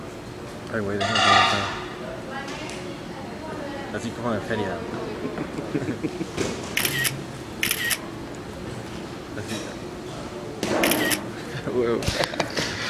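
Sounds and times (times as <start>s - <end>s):
busy background of people chatting: 0.6s - 12.5s
speech: 0.7s - 1.8s, 3.9s - 7.1s, 11.8s - 12.4s
laughter: 4.6s - 7.2s, 11.3s - 12.8s
camera shutter clicking as photo taken: 6.8s - 8.0s, 10.8s - 11.2s.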